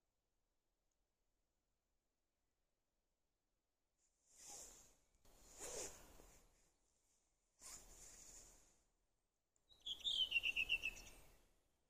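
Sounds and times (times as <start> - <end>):
redwing song: 9.7 - 11.4.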